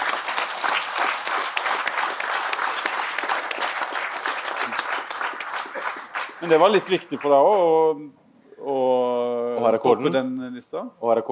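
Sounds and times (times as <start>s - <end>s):
room full of people applauding: 0.0s - 7.4s
speech: 6.4s - 11.3s.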